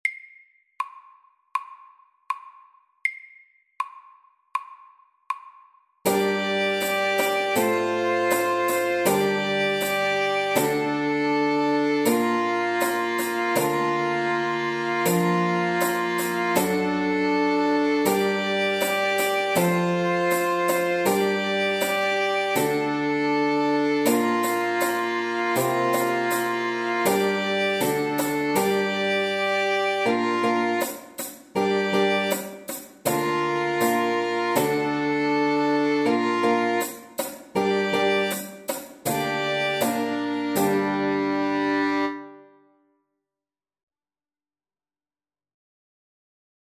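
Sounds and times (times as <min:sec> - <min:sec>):
slow Old English dance tune: 0:06.1 - 0:42.5.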